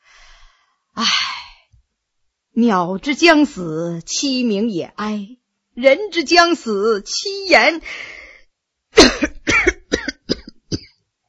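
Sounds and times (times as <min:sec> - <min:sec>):
speech: 0:02.6 - 0:08.2
person coughing violently: 0:09.0 - 0:11.0.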